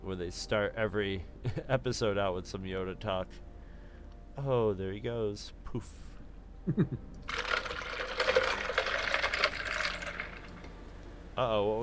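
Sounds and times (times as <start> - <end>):
speech: 0.1 - 3.5, 4.4 - 7.1, 11.4 - 11.8
laughter: 6.6 - 7.1
liquid pouring into a glass: 7.3 - 10.7.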